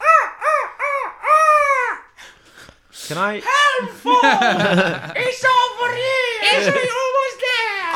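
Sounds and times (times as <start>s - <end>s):
seabird wailing cries: 0.0s - 2.1s
speech: 3.1s - 7.0s
laughter: 3.9s - 7.1s.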